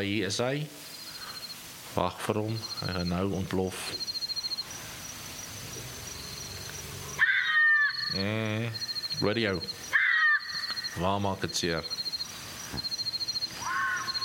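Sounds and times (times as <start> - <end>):
speech: 0.0 - 0.9, 2.0 - 4.1, 8.1 - 9.9, 11.0 - 12.0, 12.7 - 12.9
steady insect-like hum: 0.0 - 14.2
short high chirps: 0.8 - 1.7, 2.4 - 14.2
bat-eared fox yelping: 7.2 - 8.2, 9.9 - 11.0, 13.5 - 14.2.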